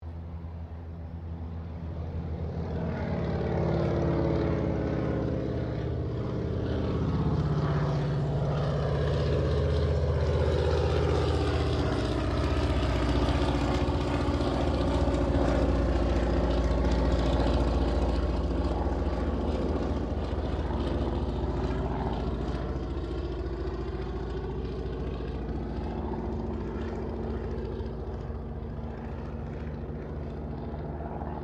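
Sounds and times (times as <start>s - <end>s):
Sopwith Pup replica biplane taking off: 0.0s - 31.4s.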